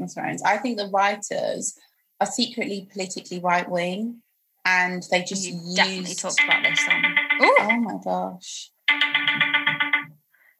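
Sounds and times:
speech: 0:00.0 - 0:09.4
mobile phone ringtone melody: 0:06.4 - 0:07.8, 0:08.9 - 0:10.2.

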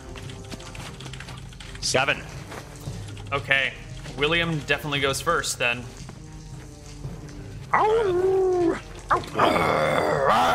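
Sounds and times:
speech: 0:01.8 - 0:02.4, 0:03.3 - 0:06.0, 0:07.8 - 0:10.5
person voicing a gnoll's guttural growl: 0:07.8 - 0:10.5.

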